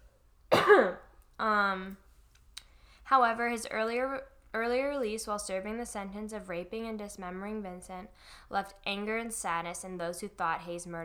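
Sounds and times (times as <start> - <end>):
person coughing: 0.5 - 1.1
speech: 0.7 - 2.0, 3.1 - 11.0.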